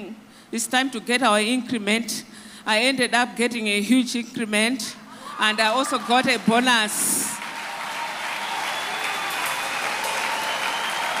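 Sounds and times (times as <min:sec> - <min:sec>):
speech: 0:00.0 - 0:07.3
audience applause: 0:06.0 - 0:11.1.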